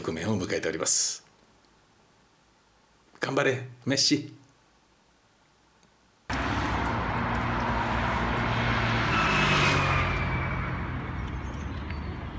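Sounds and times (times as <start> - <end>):
speech: 0.1 - 1.2, 3.2 - 4.4
car passing by with engine and tire roar: 6.3 - 12.3
roadside traffic noise on a road with car, bicycle and pedestrian lanes: 6.3 - 12.3.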